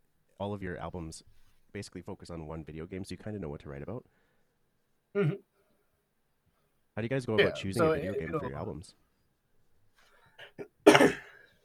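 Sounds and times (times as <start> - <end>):
speech: 0.4 - 4.2, 5.1 - 5.5, 7.0 - 9.0
person coughing harshly: 5.2 - 5.4, 10.4 - 11.5.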